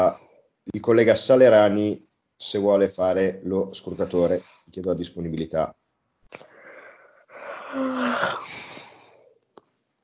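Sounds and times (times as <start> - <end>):
speech: 0.1 - 6.5, 7.7 - 8.6
person yawning into an open microphone during a council meeting: 7.4 - 8.9.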